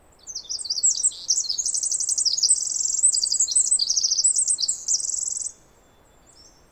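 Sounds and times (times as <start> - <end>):
Pacific wren song of tinkling trills and buzzy warbles: 0.2 - 6.6.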